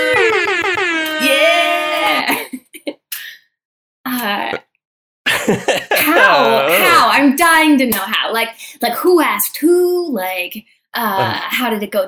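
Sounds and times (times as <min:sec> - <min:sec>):
person imitating an air horn: 0:00.0 - 0:02.3, 0:06.1 - 0:07.0
laughter: 0:00.0 - 0:02.6, 0:05.3 - 0:07.2
speech: 0:05.5 - 0:05.7, 0:07.3 - 0:12.0.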